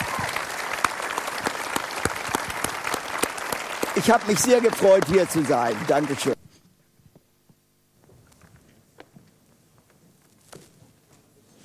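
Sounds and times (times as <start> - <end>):
audience applause: 0.0 - 6.4
sharp individual hand claps: 0.0 - 6.4
speech: 4.0 - 6.4.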